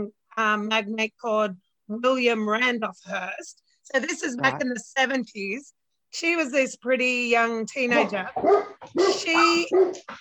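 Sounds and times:
speech: 0:00.0 - 0:10.1
dogs barking: 0:07.9 - 0:10.1.

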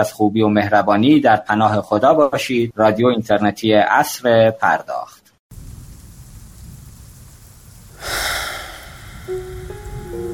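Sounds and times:
speech: 0:00.0 - 0:05.2
rumbling thunderclap: 0:05.5 - 0:10.3
steady rain: 0:05.5 - 0:10.3
faint tonal notes: 0:09.3 - 0:10.3.

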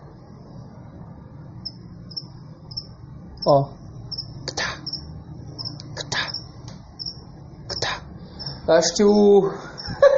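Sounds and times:
high-pitched buzz of a cricket shocked on an electric fence: 0:01.6 - 0:08.6
speech: 0:03.4 - 0:03.8, 0:08.7 - 0:09.7.

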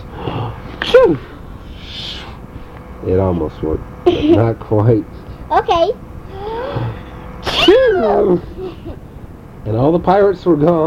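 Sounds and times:
big sneeze imitated by a human voice: 0:00.8 - 0:02.2, 0:06.5 - 0:08.3
speech: 0:01.0 - 0:01.4, 0:03.0 - 0:06.1, 0:07.7 - 0:09.0, 0:09.6 - 0:10.8.

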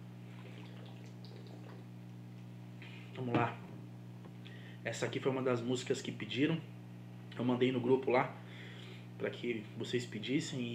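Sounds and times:
steady low electrical hum: 0:00.0 - 0:10.7
water being poured: 0:00.3 - 0:01.8
speech: 0:03.2 - 0:03.6, 0:04.8 - 0:06.7, 0:07.4 - 0:08.4, 0:09.2 - 0:10.7.

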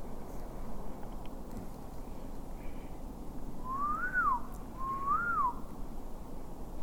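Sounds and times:
steady low outdoor rumble: 0:00.0 - 0:06.8
person whistling rising-and-falling notes: 0:03.7 - 0:05.6.

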